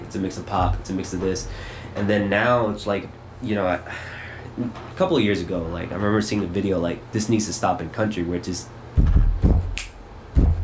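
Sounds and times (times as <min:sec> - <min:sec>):
speech: 0:00.1 - 0:09.1
deep booming low thuds: 0:09.0 - 0:10.6
sharp finger snap: 0:09.6 - 0:10.6.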